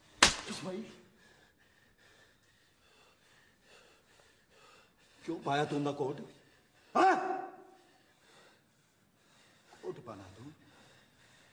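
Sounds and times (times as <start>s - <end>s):
slap across the face: 0.1s - 0.7s
speech: 0.6s - 1.0s, 5.3s - 7.0s.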